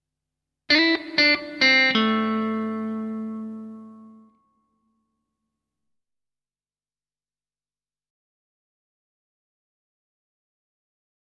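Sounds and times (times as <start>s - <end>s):
lead guitar lick: 0.7s - 4.3s.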